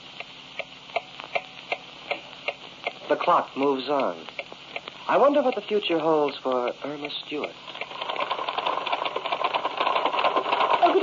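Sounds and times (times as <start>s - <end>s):
speech: 3.1s - 4.4s, 5.1s - 7.7s
typewriter typing: 7.7s - 11.0s.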